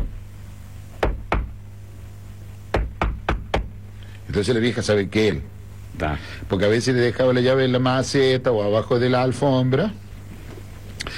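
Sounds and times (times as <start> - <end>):
low steady hum: 0.0 - 11.1
knocking on a house door: 1.0 - 1.6, 2.7 - 3.7
speech: 4.4 - 10.0.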